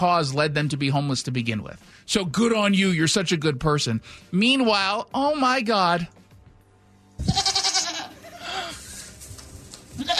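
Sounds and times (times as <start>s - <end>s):
speech: 0.0s - 6.2s
person imitating a goat bleat in a studio: 7.2s - 8.8s, 10.0s - 10.1s.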